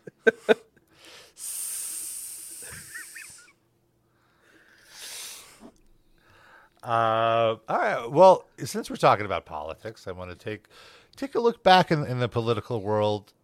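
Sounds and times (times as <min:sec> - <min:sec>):
speech: 0:00.2 - 0:00.7, 0:06.8 - 0:13.4
voice imitating snake hiss: 0:01.4 - 0:03.5, 0:04.9 - 0:05.7.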